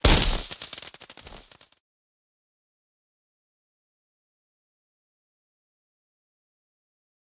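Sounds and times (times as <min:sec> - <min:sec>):
electric shock zap: 0:00.0 - 0:01.6.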